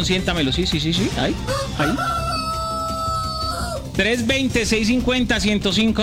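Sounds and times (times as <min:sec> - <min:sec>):
speech: 0:00.0 - 0:02.2, 0:04.0 - 0:06.0
rooster crowing on a radio broadcast: 0:01.4 - 0:03.8.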